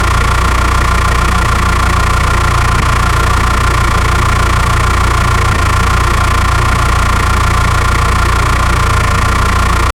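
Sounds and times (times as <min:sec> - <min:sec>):
car engine running in a loop: 0:00.0 - 0:09.9.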